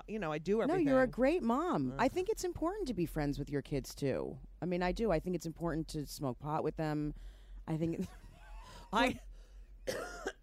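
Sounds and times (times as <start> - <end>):
faint steady hum: 0.0 - 10.4
speech: 0.1 - 8.2, 8.9 - 9.3, 9.9 - 10.3
sharp coughs: 9.8 - 10.4.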